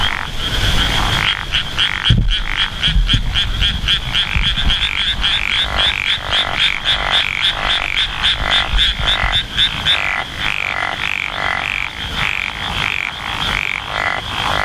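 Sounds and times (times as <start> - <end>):
Japanese wrinkled frog croaking: 0.0 - 14.6.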